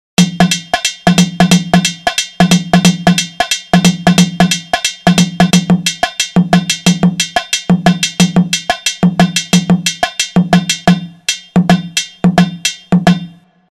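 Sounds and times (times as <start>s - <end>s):
nagara drum: 0.2s - 13.5s.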